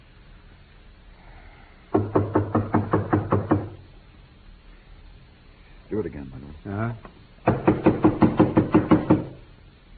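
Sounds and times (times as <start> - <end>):
loud forceful knocking: 1.9 - 3.8, 7.4 - 9.4
speech: 6.0 - 7.9.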